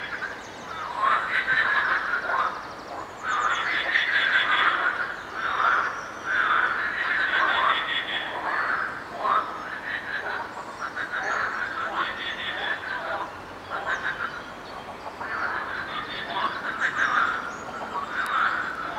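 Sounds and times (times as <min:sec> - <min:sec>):
frogs croaking: 0:00.0 - 0:18.9.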